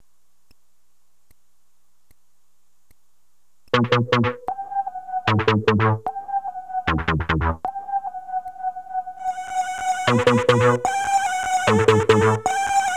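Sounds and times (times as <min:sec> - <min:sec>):
intro synth pad: 0:03.8 - 0:12.9.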